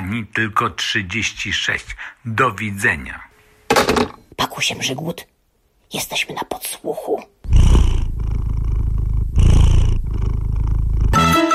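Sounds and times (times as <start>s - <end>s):
speech: 0.1s - 5.3s, 5.9s - 7.6s
cat purring: 7.4s - 11.4s.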